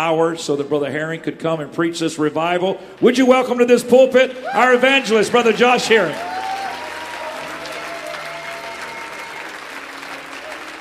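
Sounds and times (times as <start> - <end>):
speech: 0.0 - 6.4
large congregation applauding: 4.3 - 10.8.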